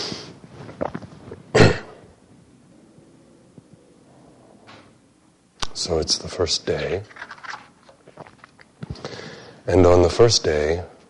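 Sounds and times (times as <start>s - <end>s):
loud cough from a person with bad allergies: 1.5s - 2.0s
speech: 5.8s - 7.2s, 9.7s - 11.0s
breathy exhale: 9.0s - 9.6s.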